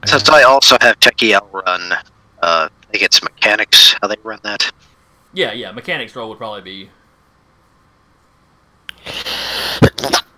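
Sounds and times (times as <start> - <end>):
speech: 0.0 - 7.0, 9.0 - 10.2
person sneezing: 9.0 - 10.3.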